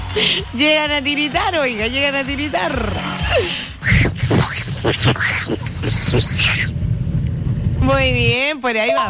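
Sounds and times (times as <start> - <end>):
speech: 0.2 - 6.8, 7.8 - 9.0
person imitating a cartoon duck's quacking voice: 3.8 - 6.7.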